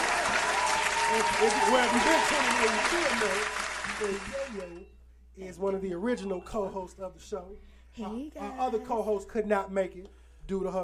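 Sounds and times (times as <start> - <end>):
crowd clapping: 0.0 - 4.8
speech: 1.1 - 10.8.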